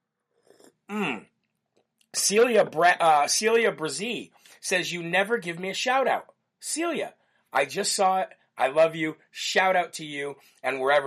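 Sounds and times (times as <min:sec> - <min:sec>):
slurping hot coffee from a cup: 0:00.3 - 0:00.9
drinker sighing a satisfied ahh: 0:00.9 - 0:01.2
speech: 0:00.9 - 0:01.3, 0:02.3 - 0:11.0.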